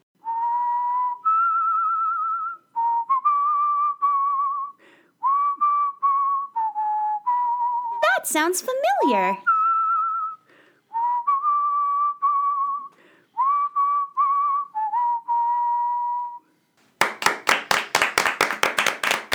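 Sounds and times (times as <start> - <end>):
toothless person whistling a melodic tune: 0.2 - 8.2, 9.4 - 16.6
speech: 8.3 - 9.5
rhythmic hand clapping: 16.8 - 19.3.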